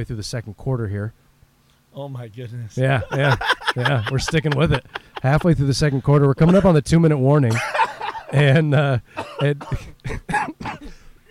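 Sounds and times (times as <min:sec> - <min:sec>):
speech: 0:00.0 - 0:01.2, 0:01.9 - 0:10.3
people chuckling: 0:02.8 - 0:06.8, 0:07.5 - 0:10.3
two people coughing during a tasting session: 0:03.0 - 0:06.8, 0:07.5 - 0:11.2
throat clearing: 0:09.2 - 0:11.2.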